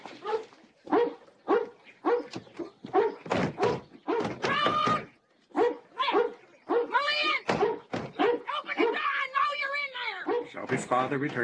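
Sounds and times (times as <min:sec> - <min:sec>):
dog barking excitedly with yips and whines: 0:00.2 - 0:10.6
speech: 0:10.8 - 0:11.4.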